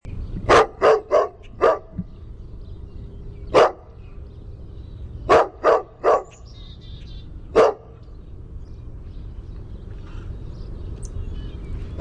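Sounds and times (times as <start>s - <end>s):
dog giving short sharp barks: 0.5s - 1.9s, 3.5s - 3.9s, 5.3s - 6.4s, 7.5s - 8.0s.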